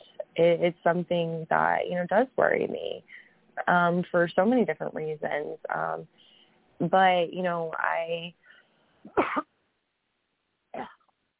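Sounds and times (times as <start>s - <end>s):
speech: 0.4s - 8.4s, 9.0s - 9.5s, 10.8s - 11.0s
person clearing throat: 9.1s - 9.4s.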